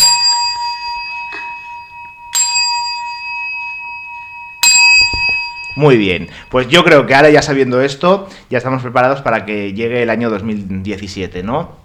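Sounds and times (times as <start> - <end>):
clock bell striking the New Year's Eve chimes: 0.0 - 8.0
speech: 5.8 - 11.8.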